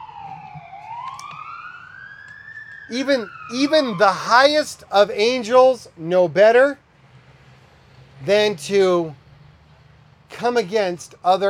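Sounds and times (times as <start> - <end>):
emergency vehicle siren wailing: 0.0 - 5.9
speech: 2.9 - 6.8, 8.2 - 9.2, 10.3 - 11.4.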